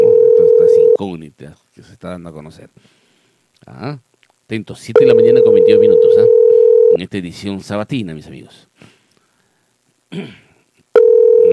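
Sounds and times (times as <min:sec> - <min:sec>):
telephone dial tone while placing a live on-air call: 0:00.0 - 0:01.0, 0:05.0 - 0:07.0, 0:11.0 - 0:11.5
speech: 0:01.0 - 0:03.0, 0:03.6 - 0:09.0, 0:10.1 - 0:10.4.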